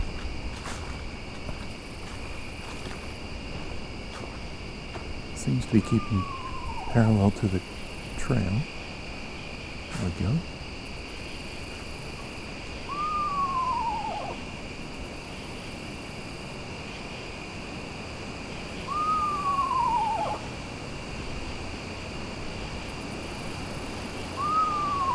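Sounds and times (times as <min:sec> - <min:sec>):
steady drone of night insects: 0:00.0 - 0:25.1
speech: 0:05.5 - 0:08.7, 0:10.0 - 0:10.6
screech owl descending quavering whinny: 0:05.7 - 0:07.4, 0:12.9 - 0:14.4, 0:18.8 - 0:20.5, 0:24.3 - 0:25.1.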